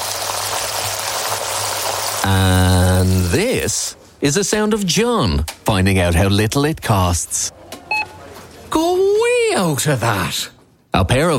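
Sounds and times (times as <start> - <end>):
two-day matured sirloin steaks sizzling in pure Irish butter: 0.0 - 3.3
speech: 2.2 - 7.6, 9.6 - 11.3.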